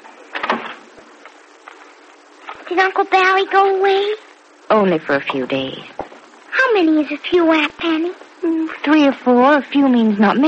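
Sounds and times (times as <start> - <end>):
door closing onto a porch: 0.3 - 0.8
speech: 2.7 - 5.9, 6.8 - 10.4.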